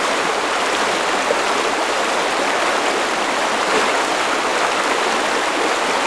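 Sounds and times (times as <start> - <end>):
river water: 0.0 - 6.0.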